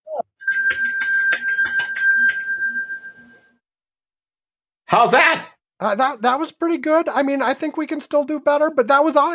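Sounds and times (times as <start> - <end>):
bright bell ringing, digitally enhanced: 0.4 - 3.5
speech: 4.9 - 9.3.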